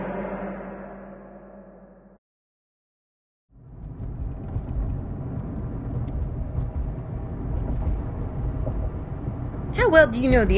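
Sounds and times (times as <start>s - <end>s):
car engine and road noise: 3.5s - 10.5s
speech: 9.9s - 10.5s.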